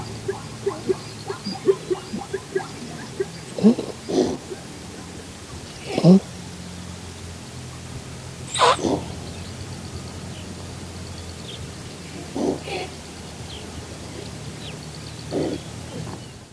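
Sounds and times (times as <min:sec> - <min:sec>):
Thomson's gazelle snorting: 0:00.0 - 0:06.3, 0:12.1 - 0:13.0, 0:15.3 - 0:16.3
steady low hum: 0:00.0 - 0:16.4.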